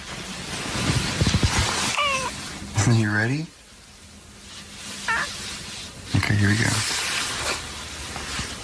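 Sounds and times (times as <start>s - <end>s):
steady hissing background: 0.0s - 8.6s
cat meowing: 1.8s - 2.4s, 5.0s - 5.4s
speech: 2.8s - 3.6s, 6.3s - 6.9s.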